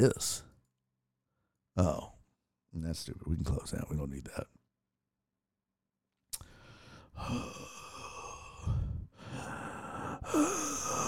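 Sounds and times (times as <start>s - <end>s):
speech: 0.0s - 0.4s, 1.8s - 2.1s, 2.8s - 4.6s, 7.2s - 7.9s, 10.3s - 11.0s
person imitating heavy labored breathing: 6.5s - 11.0s.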